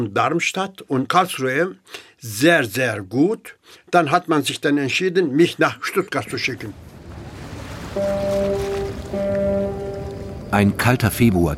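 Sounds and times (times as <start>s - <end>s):
speech: 0.0s - 6.9s, 7.9s - 8.2s, 10.5s - 11.5s
constant wash of harbor water: 6.4s - 10.5s
ship's horn blasts: 7.9s - 10.6s.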